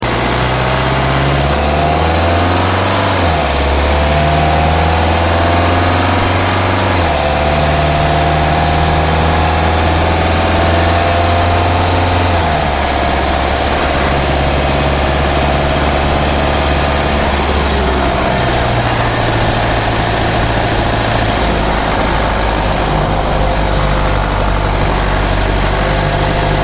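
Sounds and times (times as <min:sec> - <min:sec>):
BMW X3 20d accelerating normally, recorded outside: 0:00.0 - 0:26.6.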